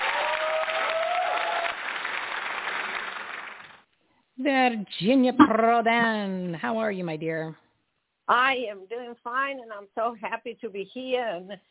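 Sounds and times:
audience whistles or cheers: 0:00.0 - 0:01.8
audience clapping: 0:00.0 - 0:03.8
speech: 0:04.4 - 0:07.6, 0:08.3 - 0:11.6.

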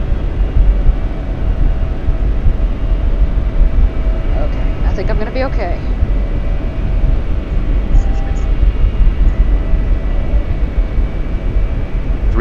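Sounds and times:
airplane engine running after landing: 0:00.0 - 0:12.3
faint steady tones: 0:00.0 - 0:12.3
speech: 0:05.2 - 0:06.0.

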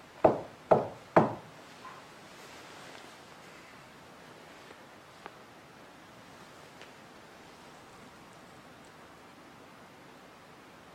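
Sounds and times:
sharp knocks on a solid surface: 0:00.2 - 0:01.5.

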